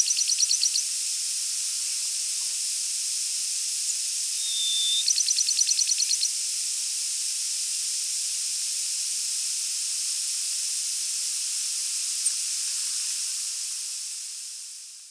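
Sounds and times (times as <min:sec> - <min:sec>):
Bachman's sparrow giving a short rapid trill: 0:00.0 - 0:00.8, 0:04.4 - 0:06.3
hiss: 0:00.8 - 0:05.0, 0:06.4 - 0:15.0.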